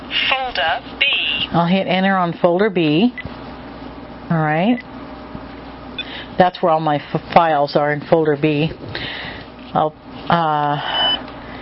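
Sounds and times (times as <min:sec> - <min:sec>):
speech: 0:00.6 - 0:03.3, 0:04.3 - 0:04.9, 0:06.4 - 0:09.1, 0:09.7 - 0:11.2
electronic beeps from a digital voice recorder: 0:10.9 - 0:11.2.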